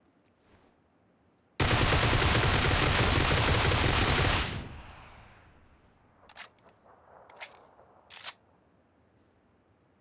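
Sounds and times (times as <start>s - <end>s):
Groza rifle firing full auto: 1.6s - 5.6s, 6.2s - 8.4s.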